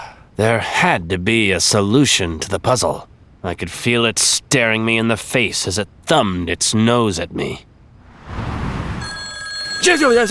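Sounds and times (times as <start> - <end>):
speech: 0.4 - 7.7, 9.8 - 10.2
rushing noise: 8.1 - 9.0
telephone ringing with a bright tone: 9.0 - 10.2.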